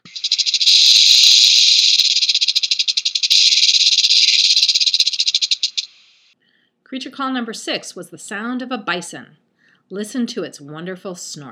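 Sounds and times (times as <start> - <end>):
western diamondback rattlesnake rattling: 0.0 - 6.4
speech: 6.9 - 11.5.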